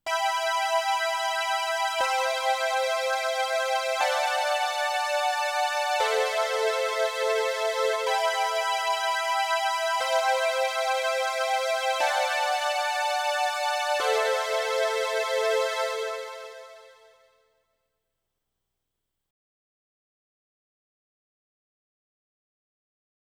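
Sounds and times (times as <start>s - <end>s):
synthwave music: 0.1s - 17.1s.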